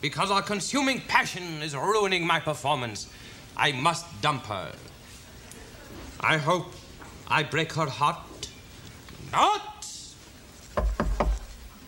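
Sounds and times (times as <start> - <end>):
speech: 0.0 - 4.9, 6.2 - 8.3, 9.3 - 9.7
woman knocking on a wooden door: 10.8 - 11.5.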